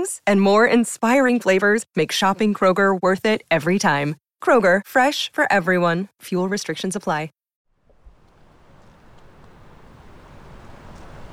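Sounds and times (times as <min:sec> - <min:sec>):
speech: 0:00.0 - 0:07.4
water roaring through a drainage sluice on a channel from the Somerset Levels: 0:07.9 - 0:11.3.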